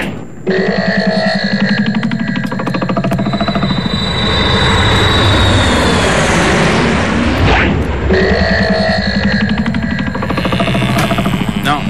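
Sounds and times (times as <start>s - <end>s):
speech: 0.4s - 1.2s
airplane engine warming up with high whine: 2.0s - 11.8s.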